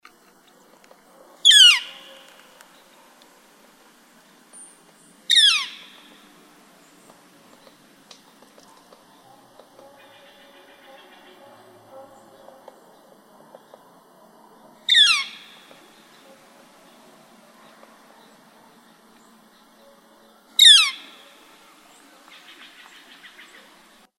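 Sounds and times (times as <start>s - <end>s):
northern flicker: 1.4s - 3.3s, 4.2s - 13.9s, 14.9s - 17.1s, 20.6s - 24.0s.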